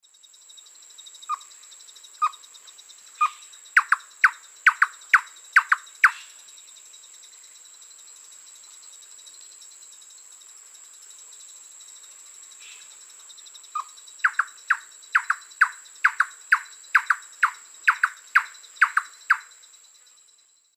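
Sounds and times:
Campylorhynchus turdinus calls in the Eastern Lowlands of South America: 1.2s - 2.5s, 3.1s - 6.4s, 13.6s - 19.6s.

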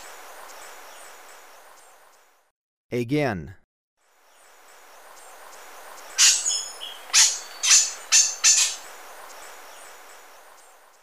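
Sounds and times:
speech: 2.9s - 3.6s
Lineated Foliage-gleaner harsh scratchy call notes in Ecuador: 4.7s - 10.3s.

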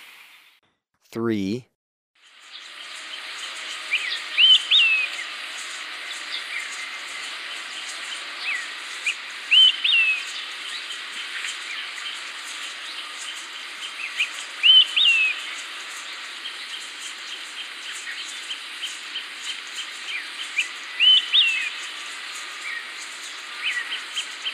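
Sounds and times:
speech: 1.1s - 1.7s
olive-sided flycatcher whistled song in Ecuador: 2.4s - 24.5s.

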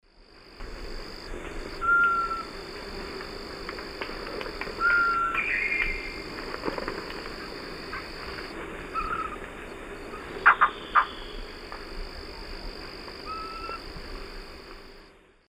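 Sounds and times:
Thamnophilus aethiops female and juvenile calls in South American eastern lowlands: 1.8s - 2.5s, 4.7s - 6.3s, 8.9s - 9.4s, 10.1s - 11.5s, 13.2s - 13.8s.

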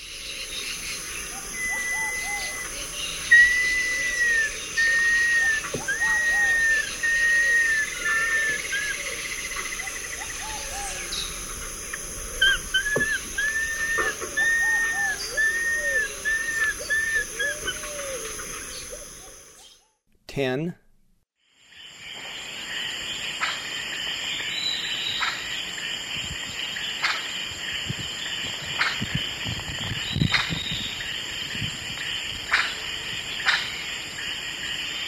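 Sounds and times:
steady insect hiss: 0.0s - 19.8s, 21.4s - 35.0s
higher whistled bird calls in a forest: 0.5s - 11.5s, 12.3s - 19.9s
ruddy and pale-vented pigeons cooing in a forest: 1.3s - 19.4s
speech: 20.4s - 20.8s.

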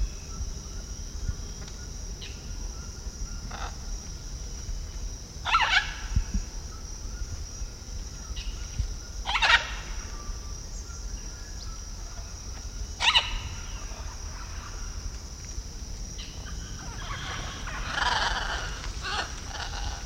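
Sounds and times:
high insect hum in eastern South American lowlands: 0.0s - 20.0s
blue-and-yellow macaw harsh raspy squawks: 5.5s - 6.1s, 9.3s - 9.9s, 13.0s - 14.8s, 16.8s - 20.0s.

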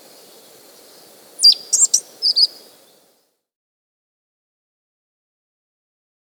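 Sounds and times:
Pale-eyed thrush singing sharp whistled notes and chips in South America: 0.0s - 3.1s.

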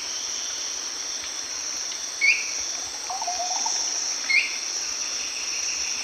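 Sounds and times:
Tyranneutes stolzmanni call: 2.3s - 4.6s.

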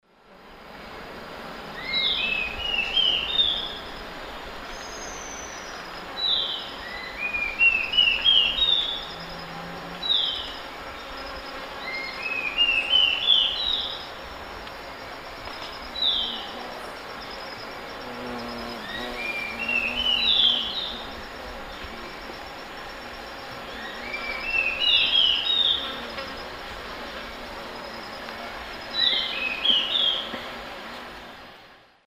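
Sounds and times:
Sittasomus griseicapillus singing in Eastern Lowlands of South America: 1.8s - 4.1s, 4.7s - 14.2s, 15.6s - 17.4s, 18.1s - 22.2s, 23.6s - 26.4s, 28.8s - 30.6s.

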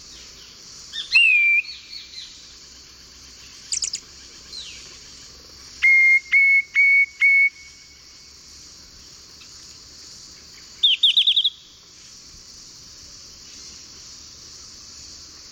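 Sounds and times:
faint steady hiss: 0.0s - 15.4s
Lawrence's thrush whistling and trilling: 1.0s - 1.8s, 3.7s - 4.0s, 5.8s - 7.7s, 10.8s - 11.6s.

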